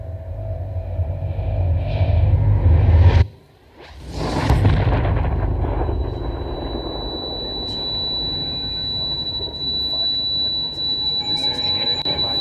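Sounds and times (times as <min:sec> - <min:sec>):
loud heavy rumble: 0:00.0 - 0:11.2
thin high whine: 0:00.0 - 0:12.3
loud explosion: 0:00.3 - 0:10.4.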